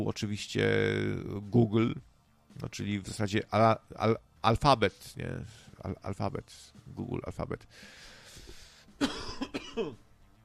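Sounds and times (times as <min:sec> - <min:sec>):
speech: 0:00.0 - 0:08.1, 0:09.0 - 0:10.0
harsh smoker's cough: 0:09.0 - 0:10.0.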